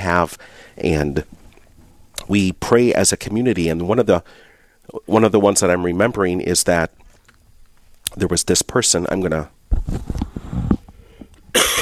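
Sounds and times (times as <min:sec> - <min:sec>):
speech: 0:00.0 - 0:01.4, 0:02.3 - 0:07.0, 0:08.2 - 0:10.3, 0:11.6 - 0:11.8
noisy breath: 0:00.0 - 0:02.2, 0:04.2 - 0:05.1, 0:09.9 - 0:11.6
loud harsh coughing fit: 0:11.4 - 0:11.8.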